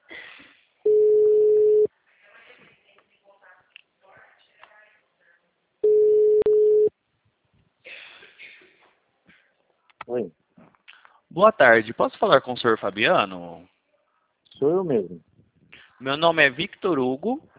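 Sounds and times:
telephone dial tone while placing a phone call: 0.9 - 1.9, 5.8 - 6.9
speech: 11.4 - 13.7, 14.6 - 15.3, 16.0 - 17.5.

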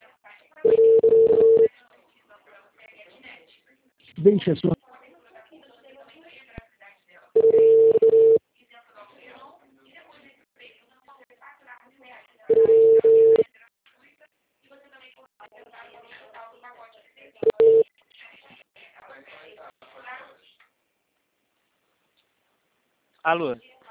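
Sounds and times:
quiet talk: 0.0 - 20.8
telephone tone beeps after a dropped call: 0.6 - 1.7, 7.4 - 8.4, 12.5 - 13.4, 17.4 - 17.8
speech: 4.2 - 4.8.

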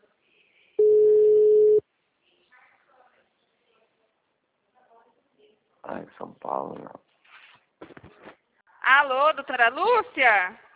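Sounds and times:
WhatsApp call ringing tone on a phone: 0.8 - 1.8
speech: 5.9 - 7.1, 8.9 - 10.6.

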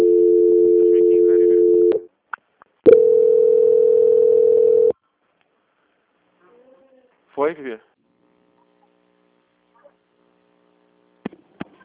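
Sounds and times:
telephone line tone while a call is being transferred: 0.0 - 2.0, 2.9 - 4.9.

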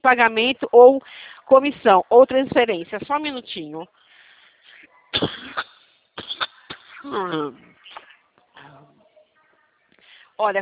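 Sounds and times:
speech: 0.0 - 4.0, 5.1 - 5.7, 7.0 - 7.7, 10.4 - 10.6
harsh coughing fit over a phone line: 5.1 - 8.2
strained voiced throat noise: 5.1 - 8.3.

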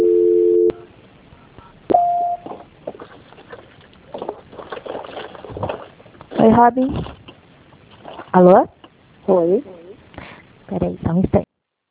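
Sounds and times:
short higher telephone beep: 0.0 - 0.9, 1.9 - 2.4
steady telephone line tone during a call transfer: 0.0 - 0.9, 1.9 - 2.4
speech: 6.4 - 7.2, 8.4 - 9.8, 10.7 - 11.4.

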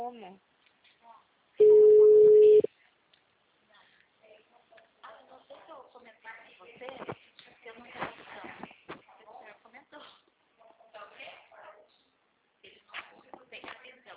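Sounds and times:
telephone ringing: 1.6 - 2.7.

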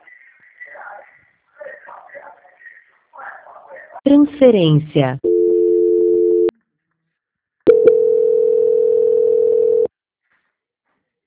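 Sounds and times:
speech: 4.1 - 5.3
telephone busy signal: 5.2 - 6.5, 7.7 - 9.9.

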